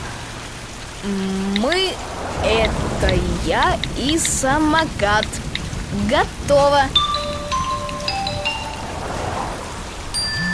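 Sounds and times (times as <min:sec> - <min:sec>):
light drizzling rain pattering: 0:00.0 - 0:10.5
speech: 0:01.0 - 0:07.0
faint high chiming tones: 0:07.0 - 0:09.0, 0:10.1 - 0:10.5.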